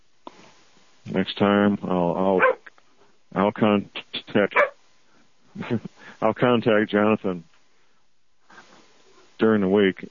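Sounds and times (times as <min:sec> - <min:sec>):
speech: 0:01.1 - 0:02.6, 0:03.3 - 0:04.7, 0:05.6 - 0:07.5, 0:09.4 - 0:10.0
dog barking: 0:02.4 - 0:02.6, 0:04.6 - 0:04.8.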